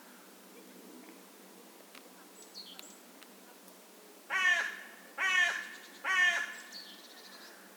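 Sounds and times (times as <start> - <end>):
carrion crow Corvus corone cawing: 4.3 - 6.7.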